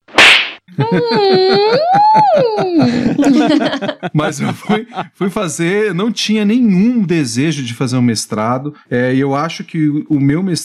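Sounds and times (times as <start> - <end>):
single sharp loud slap: 0.0 - 0.7
laughter: 0.7 - 5.4
long wavering wail with rapid pulsing flutter: 0.8 - 3.8
speech: 0.8 - 10.6.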